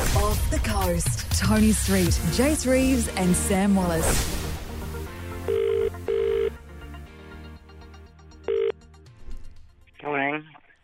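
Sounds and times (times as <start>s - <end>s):
soft music: 0.0s - 10.4s
speech: 0.3s - 4.4s
outgoing phone ringback tone: 5.5s - 6.6s, 8.5s - 8.8s.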